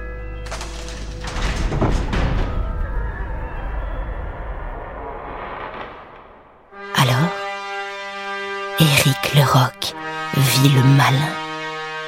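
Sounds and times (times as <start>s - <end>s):
heavy door grinding open: 0.4s - 6.9s
speech: 9.4s - 9.8s, 10.4s - 11.4s.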